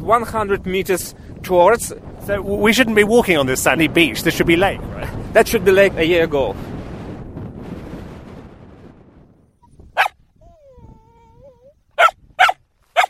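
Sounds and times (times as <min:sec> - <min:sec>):
steady wind rumble on the tundra: 0:00.0 - 0:13.0
speech: 0:00.1 - 0:06.7
dog whining at a reindeer herders' camp: 0:09.6 - 0:13.0
dogs barking outdoors at a reindeer herders' camp on the tundra: 0:10.0 - 0:10.2, 0:12.0 - 0:13.0.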